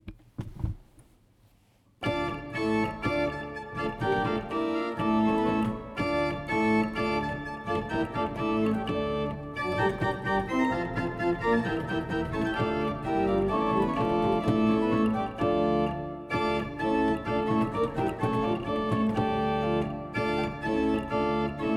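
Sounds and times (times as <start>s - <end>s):
pipe organ: 2.0s - 21.7s.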